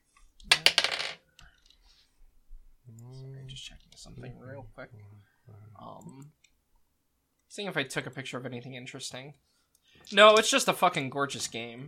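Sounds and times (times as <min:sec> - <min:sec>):
handful of dice clattering: 0:00.5 - 0:01.2
speech: 0:03.6 - 0:06.5, 0:07.5 - 0:11.8.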